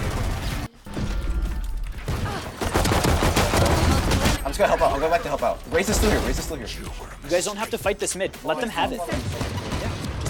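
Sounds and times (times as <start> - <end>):
gunfire in a team-based video game shooter: 0.0 - 4.4, 9.0 - 10.2
speech: 4.6 - 9.6.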